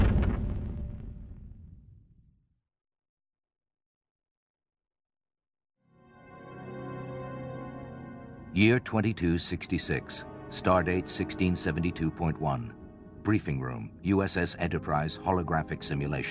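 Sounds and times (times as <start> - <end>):
deep grenade blast rumbling: 0.0 - 2.1
steady harmonic tone: 6.3 - 16.2
speech: 8.6 - 16.2.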